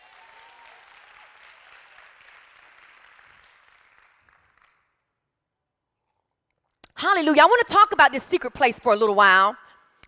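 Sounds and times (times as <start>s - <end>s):
audience clapping: 0.0s - 5.2s
speech: 7.1s - 10.0s.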